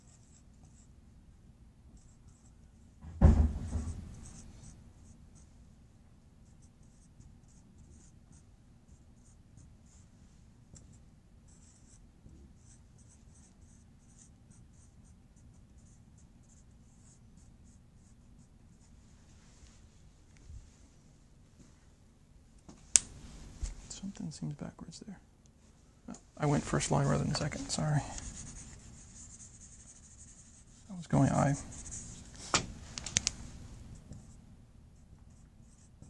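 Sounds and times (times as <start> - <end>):
pen scratching as someone writes by hand: 0.0 - 0.9, 3.7 - 5.2, 6.5 - 10.0, 11.5 - 12.0, 12.6 - 18.2, 27.3 - 32.4, 35.3 - 36.0
loud knock: 3.0 - 4.1
speech: 24.0 - 25.3, 26.1 - 28.3, 31.1 - 31.8.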